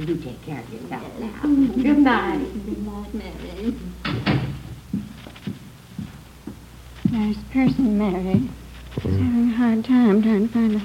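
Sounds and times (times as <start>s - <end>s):
speech: 0.0s - 4.4s, 7.1s - 10.8s
door opening and closing: 4.0s - 4.7s.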